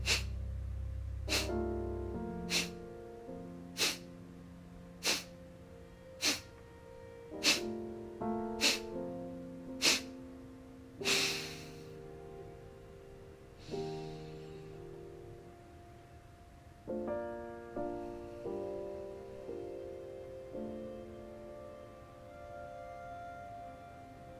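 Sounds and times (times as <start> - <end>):
kapalabhati yoga breathing with forceful nasal exhalations: 0.0 - 0.4, 1.3 - 1.6, 2.4 - 2.8, 3.8 - 4.1, 5.0 - 5.3, 6.2 - 6.5, 7.4 - 7.7, 8.6 - 9.0, 9.8 - 10.1, 11.0 - 12.0, 13.6 - 14.5
soft sustained tonal music: 0.0 - 24.3.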